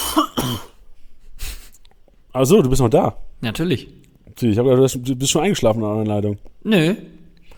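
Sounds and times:
person coughing: 0:00.0 - 0:00.8
speech: 0:00.2 - 0:00.7, 0:02.4 - 0:07.2.

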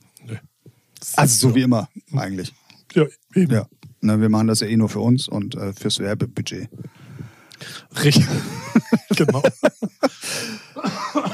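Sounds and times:
speech: 0:00.3 - 0:07.0, 0:07.6 - 0:11.2
laughter: 0:08.1 - 0:11.3
person coughing: 0:10.1 - 0:11.3.

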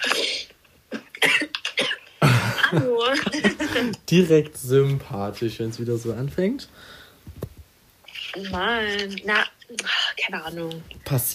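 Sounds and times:
harsh raspy hacking coughing: 0:00.0 - 0:04.0
laughter: 0:02.2 - 0:04.0
speech: 0:02.7 - 0:07.0, 0:08.4 - 0:11.3.

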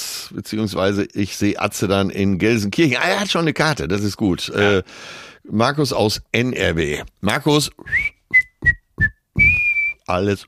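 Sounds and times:
speech: 0:00.3 - 0:08.8, 0:10.1 - 0:10.4
person whistling a short tune: 0:07.9 - 0:10.1.

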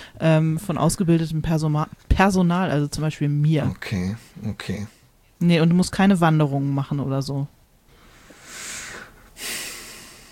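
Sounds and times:
speech: 0:00.2 - 0:07.6
heavy snorting breaths of relief: 0:08.0 - 0:10.2.

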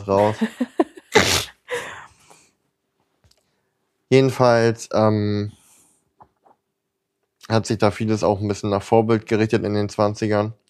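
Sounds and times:
speech: 0:00.0 - 0:01.4, 0:04.1 - 0:05.6, 0:07.5 - 0:10.6
person sneezing: 0:01.1 - 0:01.9.

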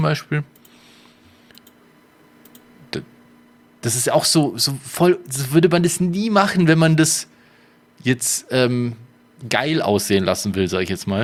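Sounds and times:
speech: 0:00.0 - 0:00.6, 0:02.9 - 0:03.1, 0:03.8 - 0:07.3, 0:08.0 - 0:11.2
computer mouse clicking through photos: 0:01.5 - 0:01.8, 0:02.4 - 0:02.7
sharp click: 0:02.4 - 0:02.7.

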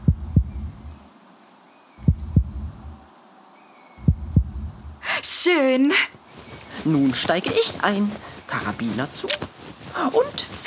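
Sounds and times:
racing heartbeat in deep paired beats: 0:00.0 - 0:01.0, 0:02.0 - 0:03.0, 0:04.0 - 0:05.0
faint hissing background: 0:00.0 - 0:10.6
speech: 0:05.4 - 0:06.2, 0:06.8 - 0:10.6.

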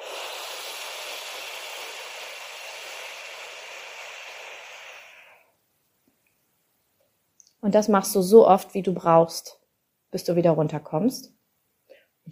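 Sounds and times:
long breathy exhale through pursed lips during a breathing exercise: 0:00.0 - 0:05.5, 0:11.9 - 0:12.2
speech: 0:07.6 - 0:11.4.

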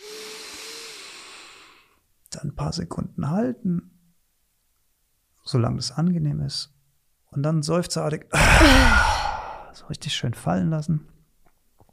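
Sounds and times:
deep inhale through the nose: 0:00.0 - 0:02.0
speech: 0:02.3 - 0:04.0, 0:05.5 - 0:09.0, 0:09.8 - 0:11.1.

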